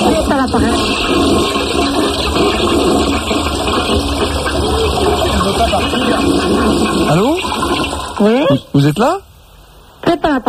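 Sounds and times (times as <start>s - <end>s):
toilet flushing: 0.0s - 9.6s
speech: 0.4s - 1.6s, 8.2s - 9.3s, 10.1s - 10.4s.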